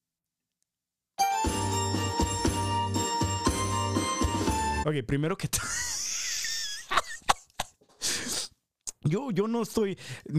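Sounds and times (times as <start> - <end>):
recorded song with pulsing bass line and bell-like melody: 1.2 - 4.9
speech: 4.9 - 5.9, 9.0 - 10.3
laughter: 5.6 - 8.2.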